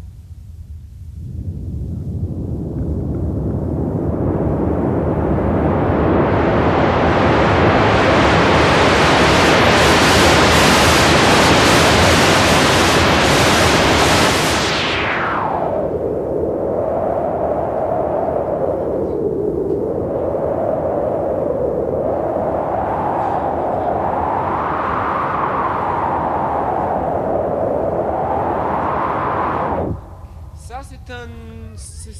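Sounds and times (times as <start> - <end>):
synthetic wind whoosh made with white noise generator: 1.2 - 30.8.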